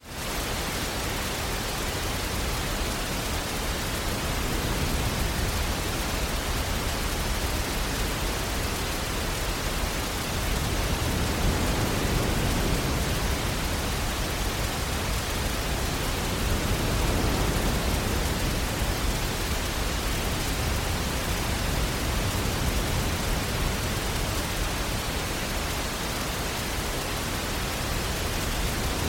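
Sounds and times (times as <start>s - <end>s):
rain: 0.0s - 29.0s.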